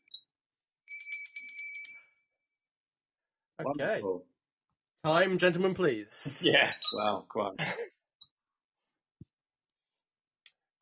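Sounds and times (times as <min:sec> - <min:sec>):
small high-pitched bell ringing: 0:00.8 - 0:02.3
speech: 0:03.6 - 0:04.3, 0:05.0 - 0:07.9.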